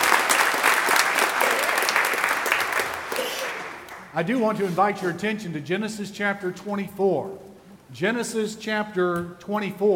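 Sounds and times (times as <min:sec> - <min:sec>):
congregation clapping steadily together: 0:00.0 - 0:04.2
speech: 0:04.2 - 0:09.9.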